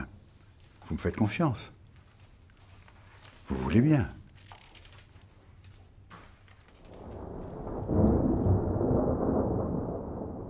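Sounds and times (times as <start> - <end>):
speech: 0.9 - 1.8, 3.5 - 4.2
low rolling thunder of a thunderstorm: 6.8 - 10.4.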